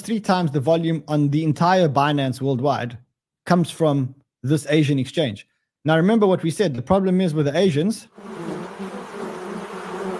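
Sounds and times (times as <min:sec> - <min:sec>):
speech: 0:00.0 - 0:08.5
bees buzzing: 0:08.2 - 0:10.1.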